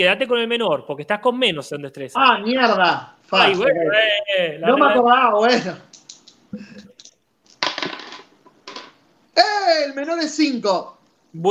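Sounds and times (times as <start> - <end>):
speech: 0.0 - 6.8, 9.4 - 11.4
dice rattling across a table: 7.5 - 9.0.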